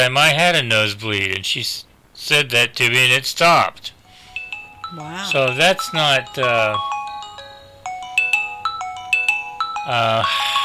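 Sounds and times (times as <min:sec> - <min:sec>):
speech: 0:00.0 - 0:04.0, 0:04.9 - 0:07.0, 0:09.8 - 0:10.6
mobile phone ringtone with electronic beeping melody: 0:04.1 - 0:10.6.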